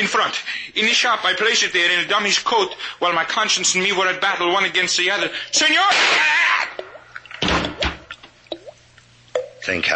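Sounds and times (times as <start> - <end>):
speech: 0.1 - 6.8, 9.6 - 9.9
water drips from a faucet plinking into a basin: 6.7 - 9.7.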